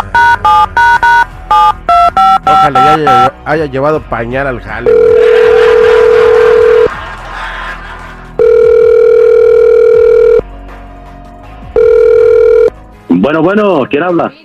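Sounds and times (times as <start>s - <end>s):
telephone ringback tone as a call is dialed: 0.0s - 3.3s, 4.9s - 6.9s, 8.4s - 10.4s, 11.8s - 12.7s
speech: 2.5s - 5.2s, 13.3s - 14.4s
laughter: 5.2s - 8.5s.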